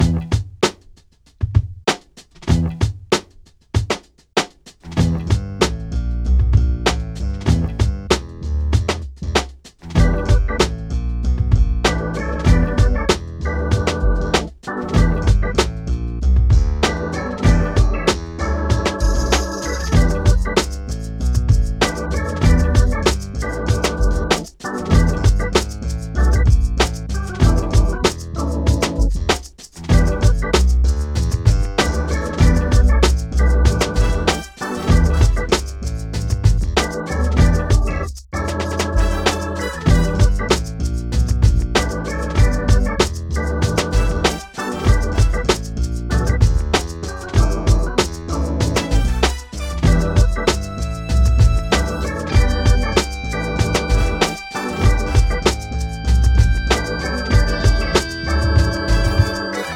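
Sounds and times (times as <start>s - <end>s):
funk rock music: 0.0s - 0.8s, 2.0s - 3.1s, 3.8s - 59.7s.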